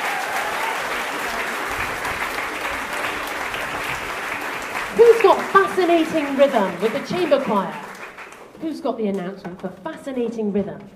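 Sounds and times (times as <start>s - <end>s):
audience applause: 0.0s - 8.6s
speech: 5.8s - 7.8s, 8.6s - 10.9s.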